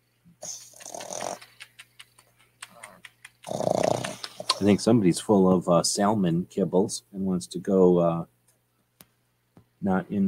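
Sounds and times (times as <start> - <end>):
puppy making growly snuffling noises: 0.4 - 1.7, 2.6 - 4.6
speech: 4.6 - 8.4, 9.8 - 10.2.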